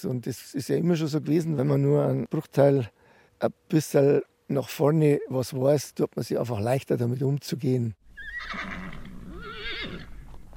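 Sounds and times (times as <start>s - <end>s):
speech: 0.0s - 9.0s
faint outdoor noise: 0.0s - 10.5s
horse whinnying in a farm paddock at the foot of the Hausberg in Garmisch-Partenkirchen: 8.1s - 10.3s.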